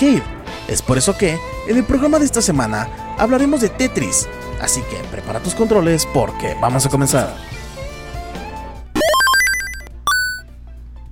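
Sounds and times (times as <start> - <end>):
speech: 0.0 - 7.6
electronic telephone ringtone for an incoming call: 9.0 - 10.4.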